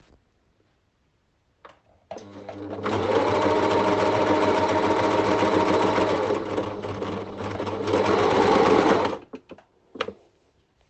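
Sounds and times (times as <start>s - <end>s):
sewing machine: 2.1s - 9.3s.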